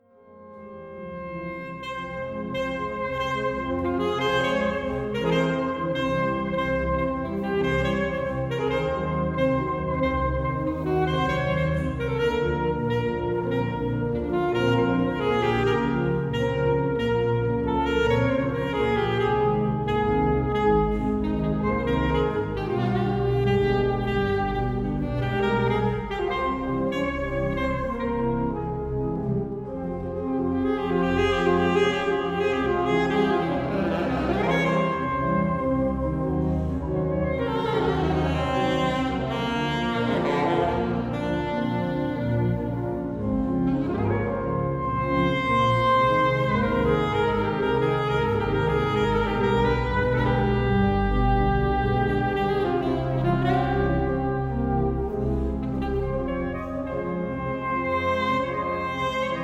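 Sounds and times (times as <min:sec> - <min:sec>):
saxophone playing a milonga: 0:00.0 - 0:59.4.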